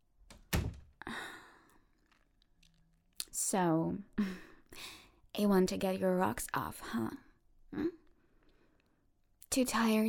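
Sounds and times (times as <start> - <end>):
door shutting with a solid heavy thunk: 0.3 - 1.0
speech: 3.5 - 4.4, 5.4 - 7.9, 9.6 - 10.0.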